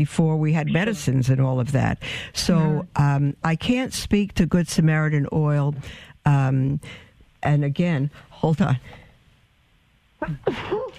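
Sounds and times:
speech: 0:00.0 - 0:09.0, 0:10.2 - 0:10.9
sneeze: 0:10.2 - 0:10.9.

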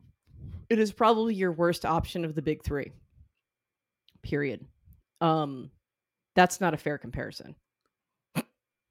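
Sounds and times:
speech: 0:00.7 - 0:03.0, 0:04.2 - 0:05.8, 0:06.4 - 0:07.6
hiccup: 0:08.3 - 0:08.6.

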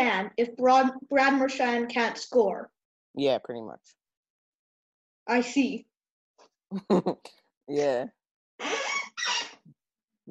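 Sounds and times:
speech: 0:00.2 - 0:04.0, 0:05.3 - 0:05.9, 0:06.7 - 0:09.4
laughter: 0:06.7 - 0:07.3
chair squeaking: 0:08.6 - 0:09.7.

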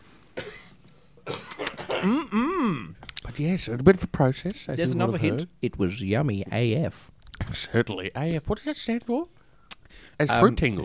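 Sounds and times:
person coughing: 0:00.4 - 0:02.9
speech: 0:02.0 - 0:02.4, 0:03.4 - 0:10.8.

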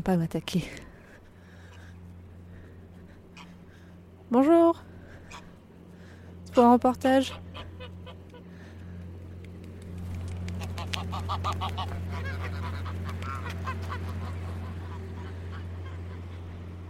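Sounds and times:
speech: 0:00.0 - 0:00.9, 0:04.3 - 0:05.4, 0:06.6 - 0:07.5
steady low hum: 0:00.0 - 0:16.8
flock of geese honking: 0:01.4 - 0:03.9, 0:07.1 - 0:08.8, 0:10.6 - 0:16.8.

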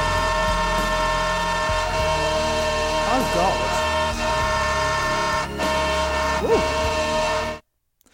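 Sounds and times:
train horn tones playing a song melody: 0:00.0 - 0:07.6
person exclaiming: 0:06.4 - 0:06.7.

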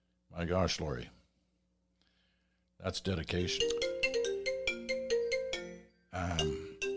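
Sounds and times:
speech: 0:00.3 - 0:01.2, 0:02.8 - 0:03.8, 0:06.2 - 0:06.7
phone ringing with a bright melodic ringtone: 0:03.5 - 0:06.9.

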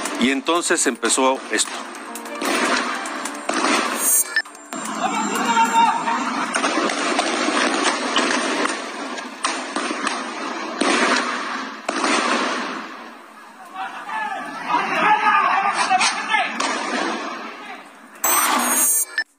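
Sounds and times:
rapid bursts of gunfire during a police shootout: 0:00.0 - 0:13.2, 0:16.6 - 0:17.6
speech: 0:00.2 - 0:02.0
shouting voices: 0:04.8 - 0:07.7, 0:13.2 - 0:16.6.

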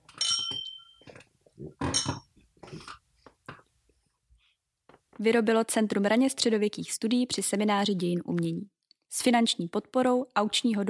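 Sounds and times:
glasses clinking together in a toast: 0:00.1 - 0:01.2, 0:01.8 - 0:02.3
speech: 0:05.2 - 0:10.8.

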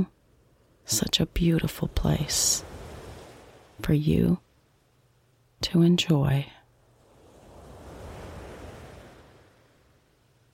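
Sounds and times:
speech: 0:00.9 - 0:02.7, 0:03.8 - 0:04.4, 0:05.6 - 0:06.6
ocean wave breaking on a sandy beach: 0:02.2 - 0:03.8, 0:06.9 - 0:09.7.

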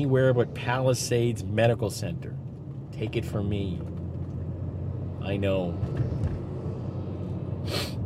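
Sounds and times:
speech: 0:00.0 - 0:03.9, 0:05.2 - 0:06.3, 0:07.6 - 0:07.9
steady low rumble: 0:00.0 - 0:08.0
sharp nasal sniff: 0:07.6 - 0:08.0.

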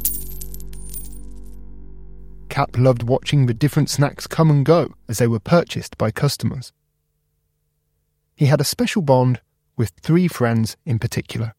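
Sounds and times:
coins clinking and dropping: 0:00.0 - 0:01.6
steady low hum of a vending machine: 0:00.0 - 0:05.3
speech: 0:02.6 - 0:06.8, 0:08.4 - 0:11.5.

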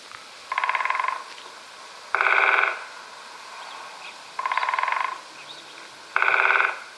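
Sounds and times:
woodpecker drumming on a tree: 0:00.5 - 0:03.0, 0:04.4 - 0:06.9.

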